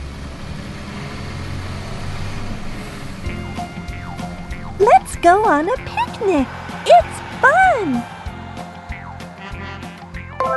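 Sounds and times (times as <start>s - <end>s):
bus engine rumbling while driving on a field trip: 0.0s - 10.4s
speech: 4.8s - 8.1s.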